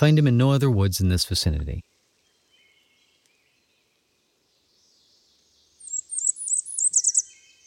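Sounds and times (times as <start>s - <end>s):
speech: 0.0s - 1.9s
warbler singing a warbling trill: 2.2s - 7.6s.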